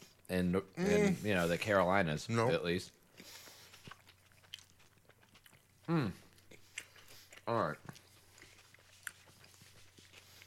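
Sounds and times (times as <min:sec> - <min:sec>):
speech: 0:00.3 - 0:03.4, 0:05.9 - 0:06.2, 0:07.5 - 0:08.0
chewing food: 0:02.8 - 0:10.4.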